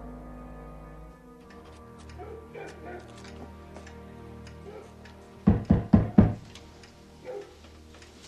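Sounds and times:
firm knocks on a wooden door: 5.5 - 6.5.

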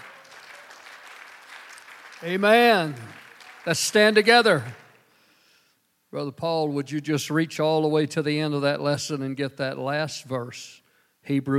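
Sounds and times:
audience clapping hands: 0.0 - 5.2
speech: 2.2 - 4.8, 6.1 - 11.5.

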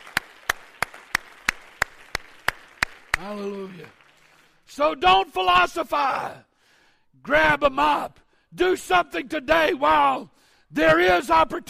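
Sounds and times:
audience clapping hands: 0.0 - 4.8
speech: 3.2 - 4.0, 4.7 - 6.5, 7.2 - 11.6.

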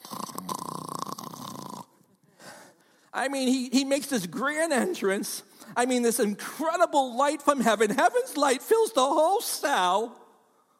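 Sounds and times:
voice imitating a loud rattling snore: 0.0 - 2.0
speech: 3.2 - 10.2.

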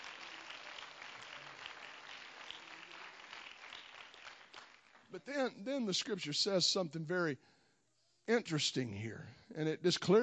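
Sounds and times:
audience clapping to give praise to God: 0.0 - 5.5
speech: 5.1 - 7.6, 8.3 - 10.2.

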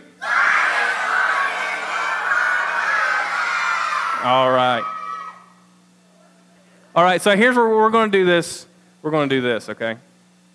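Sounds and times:
audience shouting and screaming on count of three: 0.2 - 5.6
speech: 4.2 - 4.9, 7.0 - 10.1.

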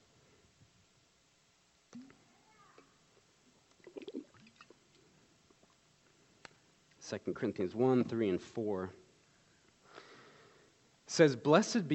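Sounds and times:
person drinking water with sips, gulps and mouth clicks: 3.7 - 5.8
speech: 7.1 - 9.0, 11.2 - 11.9.

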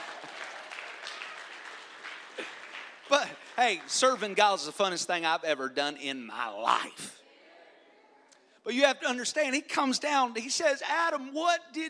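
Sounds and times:
church congregation clapping hands in worship: 0.0 - 5.2
speech: 3.6 - 7.2, 8.7 - 11.8.

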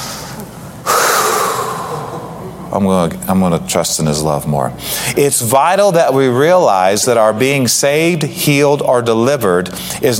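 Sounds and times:
deep breath drawn in softly: 0.0 - 2.5
speech: 2.7 - 10.1.

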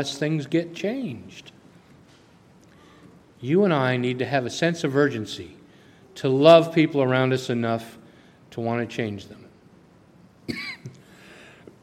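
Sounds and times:
speech: 0.0 - 1.6, 3.4 - 5.6, 6.2 - 9.4, 10.5 - 11.0
sharp cough close to the mic: 10.5 - 11.0
throat-clearing catch: 10.5 - 11.0.

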